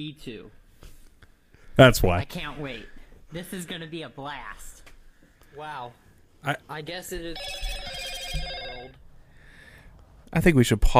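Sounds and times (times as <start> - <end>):
speech: 0.0 - 0.6, 1.8 - 4.8, 5.5 - 7.6, 10.3 - 10.9
phone notification alert bell-like electronic chime: 7.4 - 8.9.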